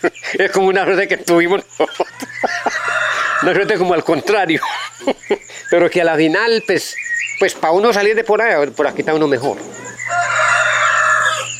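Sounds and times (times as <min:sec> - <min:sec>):
speech: 0:00.0 - 0:10.4
laughter: 0:01.4 - 0:05.6
rooster crowing at night: 0:02.0 - 0:05.0, 0:09.4 - 0:11.5.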